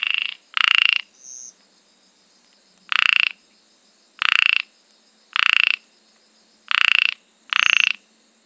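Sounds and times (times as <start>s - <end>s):
Microhyla ornata ornate narrow-mouthed frog producing short grating pulsed croaks: 0.0s - 1.5s, 2.9s - 3.4s, 4.2s - 4.7s, 5.3s - 5.9s, 6.7s - 8.1s.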